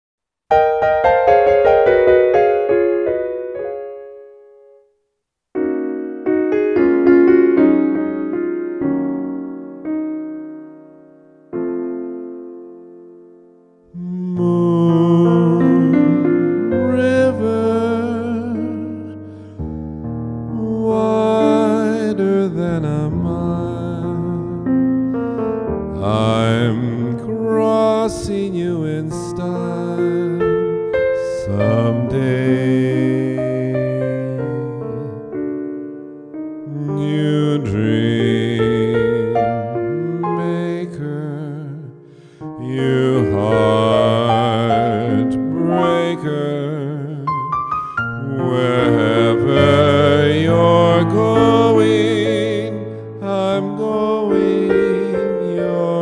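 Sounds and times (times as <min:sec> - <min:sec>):
piano: 0:00.4 - 0:55.9
person singing: 0:13.8 - 0:19.7, 0:20.5 - 0:35.5, 0:36.6 - 0:55.9.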